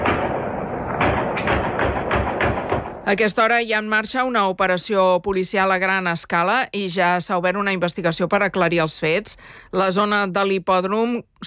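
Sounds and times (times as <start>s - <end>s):
gunshots at a horse-racing track near Zurich Switzerland: 0.0s - 3.3s
outdoor noise at a horse-racing track near Zurich: 0.0s - 11.4s
speech: 3.1s - 11.4s.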